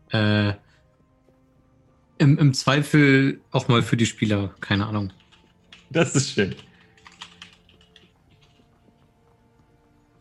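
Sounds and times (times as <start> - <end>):
speech: 0.1 - 0.6, 2.2 - 5.2, 5.9 - 6.7
typing a winking smiley on a computer keyboard: 4.6 - 8.8.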